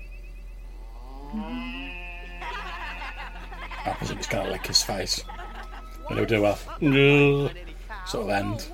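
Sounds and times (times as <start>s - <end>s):
steady hum: 0.0s - 8.7s
cow mooing: 0.8s - 3.6s
laughter: 2.1s - 7.6s
speech: 3.8s - 5.4s, 6.1s - 8.7s.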